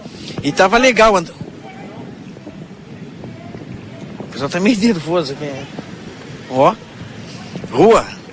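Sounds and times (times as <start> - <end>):
wind buffeting an outdoor microphone: 0.0 - 8.3
speech: 0.4 - 1.4, 4.4 - 5.8, 6.5 - 6.8, 7.8 - 8.2.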